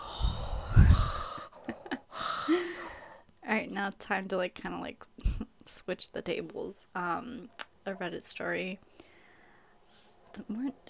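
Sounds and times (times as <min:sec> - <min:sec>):
heavy breathing into the microphone: 0:00.0 - 0:03.3, 0:08.9 - 0:10.2
speech: 0:03.5 - 0:05.1, 0:05.7 - 0:09.0, 0:10.4 - 0:10.8.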